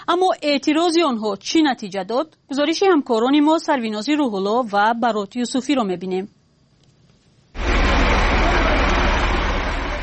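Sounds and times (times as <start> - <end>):
speech: 0.1 - 6.4
heavy freight trucks passing on a street: 7.6 - 10.0.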